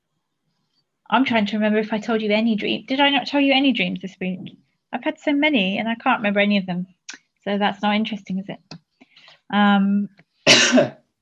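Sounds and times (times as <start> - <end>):
speech: 1.1 - 8.7, 9.5 - 11.0
single harsh loud cough: 10.5 - 11.0.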